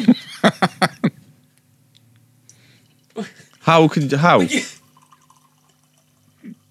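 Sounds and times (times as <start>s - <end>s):
black tea pouring from a teapot into a cup: 2.6s - 6.7s
speech: 3.7s - 4.7s.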